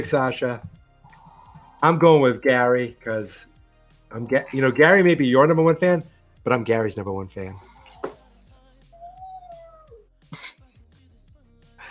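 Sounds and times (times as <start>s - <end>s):
speech: 0.0s - 0.7s, 1.8s - 3.5s, 4.1s - 8.0s
dog whining cry in the room: 8.9s - 10.0s.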